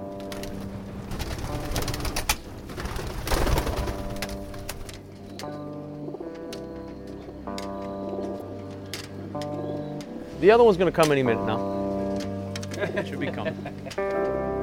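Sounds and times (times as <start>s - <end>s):
pigeon wings rustling and flapping: 0.2s - 5.5s
racing pigeons cooing at the loft: 0.2s - 10.3s
speech: 10.4s - 11.8s, 13.0s - 14.5s
laughter: 12.7s - 14.1s.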